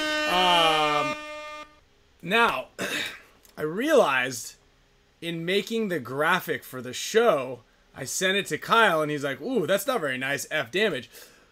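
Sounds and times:
air horn blast: 0.0 - 1.8
speech: 2.2 - 2.9, 3.6 - 4.6, 5.2 - 11.3.

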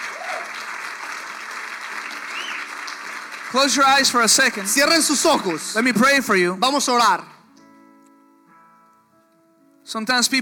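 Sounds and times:
congregation applause during a church service: 0.0 - 6.4
speech: 3.5 - 7.4, 9.9 - 10.4.

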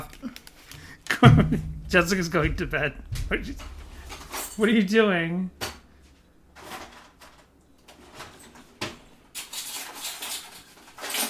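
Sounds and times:
speech: 1.2 - 3.8, 4.6 - 5.6
small hard objects clattering in a cluttered junk drawer: 6.6 - 11.2.

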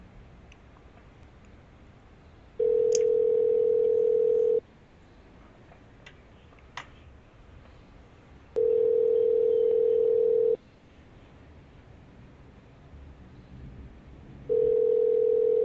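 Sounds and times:
telephone ringback tone from an outgoing call: 2.6 - 4.6, 8.6 - 10.6, 14.5 - 15.6.

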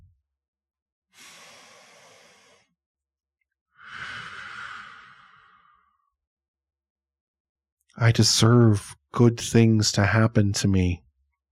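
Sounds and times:
deep breath in during guided breathing: 1.2 - 2.7, 3.8 - 6.0
speech: 8.0 - 11.0.

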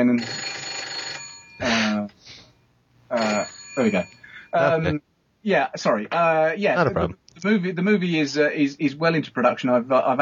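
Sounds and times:
speech: 0.0 - 0.5, 3.8 - 10.2
telephone ringing: 0.0 - 1.8, 3.1 - 4.7.

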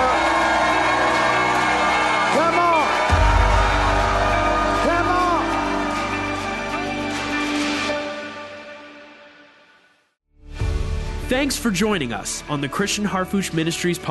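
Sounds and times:
large crowd shouting and cheering: 0.0 - 8.7
speech: 11.4 - 14.0.

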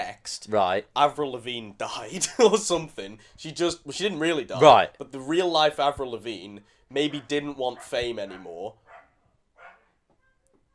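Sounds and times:
speech: 0.2 - 8.8
dog barking outside: 7.1 - 10.0
dog yipping: 7.1 - 10.4.

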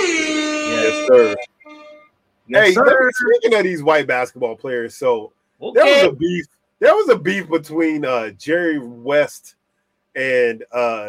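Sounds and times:
loud blaring air horn blast: 0.0 - 2.0
fainter thinner horn tone: 0.0 - 3.6
speech: 0.9 - 1.5, 2.5 - 11.0.

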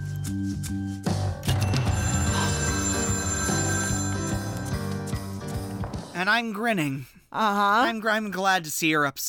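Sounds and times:
speech: 0.3 - 1.2, 6.2 - 9.2
telephone bell ringing: 1.5 - 5.8.

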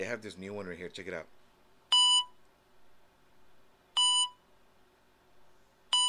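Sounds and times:
speech: 0.0 - 1.4
hospital heart monitor sound effect beeping from a phone app: 1.9 - 2.4, 4.0 - 4.4.

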